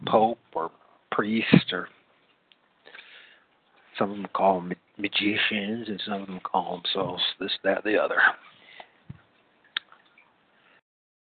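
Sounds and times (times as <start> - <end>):
speech: 0.1 - 2.0, 4.0 - 8.5
running water trickling in a fish tank: 9.2 - 10.8
water drips and splashes in a fish tank: 9.6 - 10.3.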